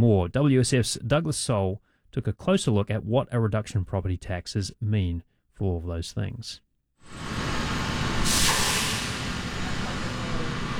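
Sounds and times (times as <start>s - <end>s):
speech: 0.0s - 7.3s
fire truck air-brake hiss: 7.2s - 10.7s
fire truck engine rumble while backing out of a fire station: 8.0s - 10.7s.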